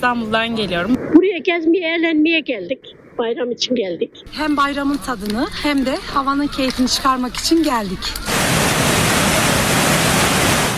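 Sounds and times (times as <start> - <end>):
speech: 0.0 - 8.5
creek flowing through a canyon: 8.2 - 10.7.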